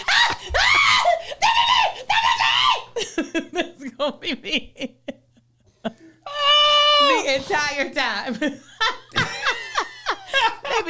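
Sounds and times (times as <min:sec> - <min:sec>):
woman screaming: 0:00.0 - 0:03.0, 0:06.2 - 0:07.4
laughter: 0:03.0 - 0:06.2, 0:08.3 - 0:10.8
speech: 0:04.0 - 0:05.0.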